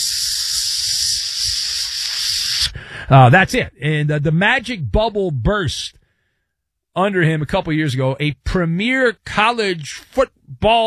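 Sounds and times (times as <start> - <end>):
hibachi grill sizzling: 0.0 - 2.6
speech: 3.0 - 6.0, 7.0 - 10.8.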